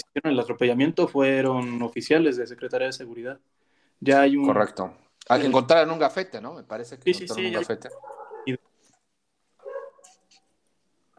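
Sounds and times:
speech: 0.2s - 8.7s
dog barking: 7.9s - 8.6s, 9.6s - 10.2s.

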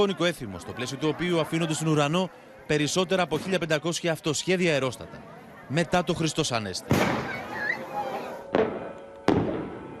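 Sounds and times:
speech: 0.0s - 7.4s
chatter: 0.0s - 9.9s
crowd noise: 0.0s - 9.9s
fireworks bangs with rumbling echo: 6.8s - 7.8s, 8.4s - 9.9s.

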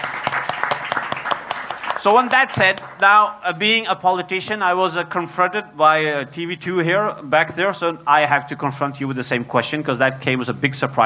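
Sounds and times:
audience applause: 0.0s - 3.0s
speech: 2.0s - 11.0s.

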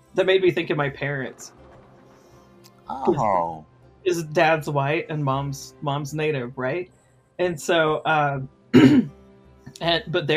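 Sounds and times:
speech: 0.2s - 1.6s, 2.9s - 9.2s, 9.8s - 10.3s
gruff rasping throat clearing: 8.8s - 9.1s.

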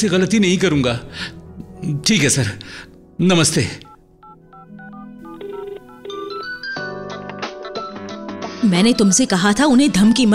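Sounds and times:
speech: 0.0s - 3.9s, 8.6s - 10.3s
phone ringing with a melodic ringtone: 4.2s - 7.0s.

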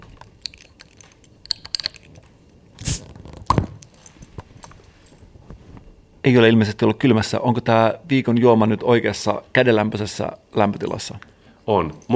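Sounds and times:
light clicks of handling a crown-capped bottle: 0.4s - 4.7s
speech: 6.3s - 12.1s.

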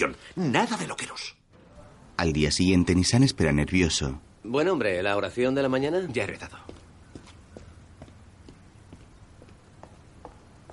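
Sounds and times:
speech: 0.0s - 1.4s, 2.2s - 6.7s
person running footsteps on a hard surface in an alley: 6.4s - 10.7s.

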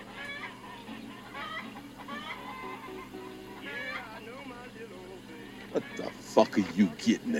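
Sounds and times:
Barred Rock chickens clucking and squawking: 0.0s - 4.2s, 5.5s - 7.3s
low hum: 0.0s - 7.3s
indistinct voices: 3.6s - 7.3s
speech: 5.8s - 7.3s.

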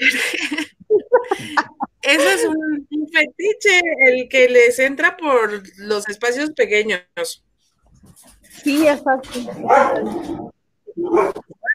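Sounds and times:
laughter: 0.0s - 2.5s
speech: 2.1s - 7.5s, 8.1s - 11.7s
dogs barking: 9.5s - 11.5s.

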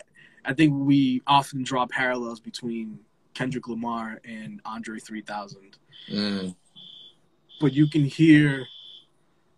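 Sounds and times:
speech: 0.4s - 6.9s, 7.6s - 8.8s
smoke alarm beeping next door: 5.8s - 9.1s.

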